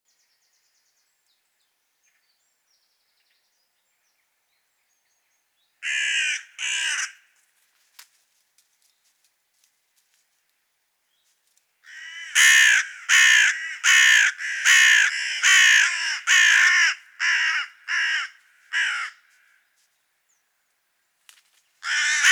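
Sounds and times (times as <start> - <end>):
carrion crow Corvus corone cawing: 5.8 - 7.4, 11.8 - 19.7, 21.8 - 22.2.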